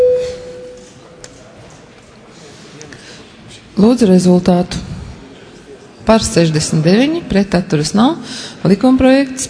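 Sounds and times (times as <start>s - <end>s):
parliament voting electronic bell tone: 0.0s - 0.8s
speech: 3.8s - 4.9s, 6.1s - 9.4s.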